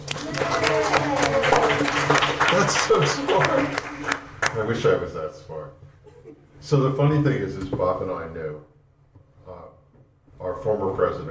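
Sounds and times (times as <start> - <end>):
audience clapping: 0.0 - 5.0
speech: 2.7 - 5.8, 6.6 - 8.7, 10.4 - 11.2.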